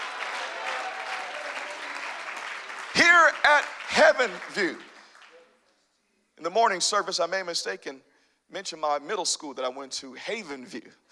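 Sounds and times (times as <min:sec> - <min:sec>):
large audience clapping: 0:00.0 - 0:05.6
speech: 0:03.2 - 0:04.9, 0:06.4 - 0:11.1.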